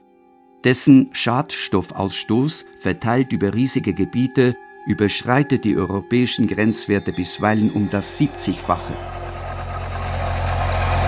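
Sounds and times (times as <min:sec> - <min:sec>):
speech: 0:00.6 - 0:09.2
tractor engine droning while pulling a fertilizer spreader across a field: 0:06.2 - 0:11.0.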